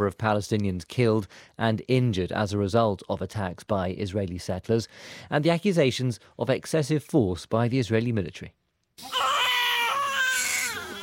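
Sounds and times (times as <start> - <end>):
speech: 0.0 - 9.2
newborn baby crying in a hospital in Nablus: 9.0 - 11.0.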